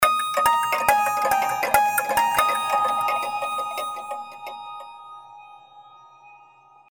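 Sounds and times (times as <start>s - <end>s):
clock ringtone: 0.0s - 5.0s.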